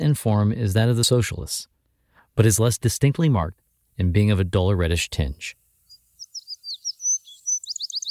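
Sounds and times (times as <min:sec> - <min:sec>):
speech: 0:00.0 - 0:01.7, 0:02.4 - 0:05.6
wood sparrow singing: 0:05.8 - 0:08.0.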